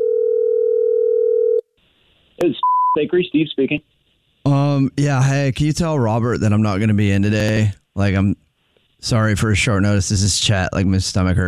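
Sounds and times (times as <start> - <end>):
phone line ringing tone on a call to a bakery: 0.0 - 1.6
speech: 2.4 - 8.4, 9.0 - 11.4.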